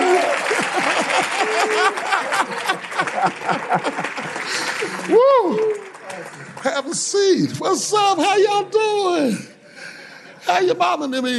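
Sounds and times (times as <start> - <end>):
scattered cheers: 0.0 - 2.5, 4.8 - 6.3
laughter: 0.0 - 6.9
audience clapping: 0.0 - 8.0
speech: 1.6 - 9.5, 10.4 - 11.3.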